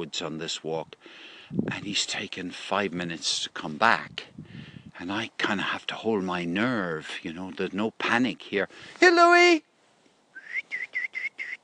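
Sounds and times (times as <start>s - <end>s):
speech: 0.0s - 9.7s
person whistling to call a dog: 10.4s - 11.6s.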